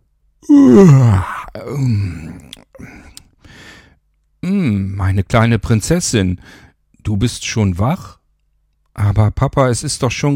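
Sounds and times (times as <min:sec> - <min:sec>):
man yawning loudly: 0:00.4 - 0:03.0
speech: 0:00.4 - 0:03.0, 0:04.7 - 0:08.2, 0:09.0 - 0:10.3.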